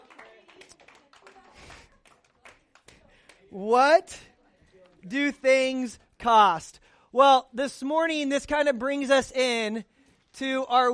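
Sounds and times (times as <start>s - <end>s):
audience clapping for a contest winner: 0.0s - 3.6s
speech: 3.5s - 4.3s, 5.0s - 10.9s.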